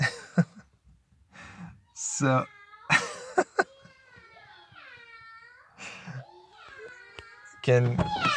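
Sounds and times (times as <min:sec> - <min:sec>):
children imitating cat meows: 0:01.9 - 0:08.3
speech: 0:02.2 - 0:02.6, 0:07.7 - 0:08.3.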